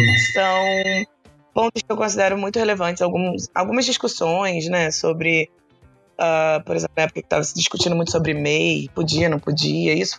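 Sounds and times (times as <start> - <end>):
telephone ringing with a steady electronic tone: 0.0 - 1.0
speech: 0.0 - 5.6, 6.2 - 10.1.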